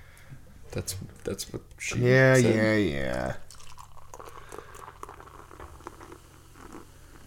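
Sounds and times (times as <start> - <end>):
speech: 0.7 - 3.4
beer pouring into a glass: 2.3 - 7.2
crackling fizz and popping bubbles of beer: 3.0 - 7.2.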